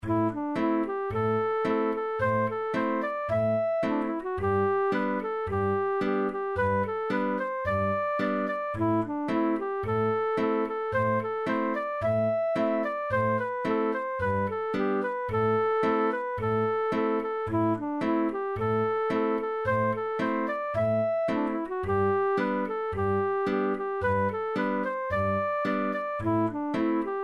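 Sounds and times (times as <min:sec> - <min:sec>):
fiddle tune: 0:00.0 - 0:27.2.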